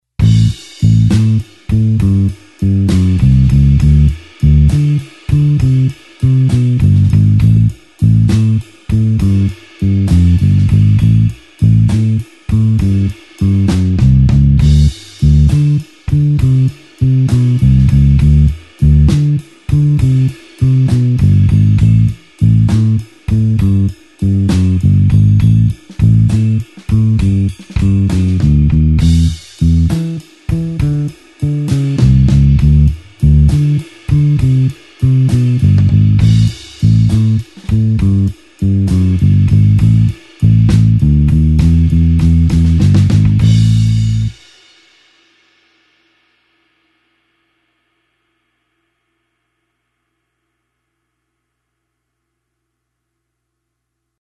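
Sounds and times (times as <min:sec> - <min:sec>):
slow blues bassline in A: 0:00.2 - 0:44.4.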